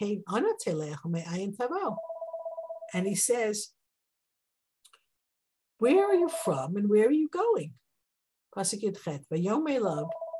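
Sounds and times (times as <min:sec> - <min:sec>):
speech: 0:00.0 - 0:02.1, 0:02.9 - 0:03.8, 0:05.8 - 0:07.8, 0:08.5 - 0:10.2
telephone ringing with a warbling electronic trill: 0:01.9 - 0:03.0, 0:09.9 - 0:10.3.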